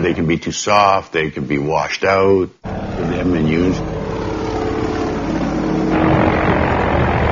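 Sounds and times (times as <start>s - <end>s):
speech: 0.0s - 4.0s
propeller engine drone of a 3,000-pound Cessna small aircraft landing on sand airstrip: 2.6s - 7.3s.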